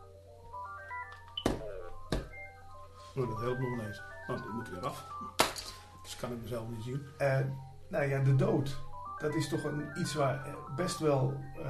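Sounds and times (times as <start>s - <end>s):
mobile phone ringtone with stepping electronic melody: 0.0s - 6.0s, 8.7s - 11.6s
speech: 3.2s - 11.6s.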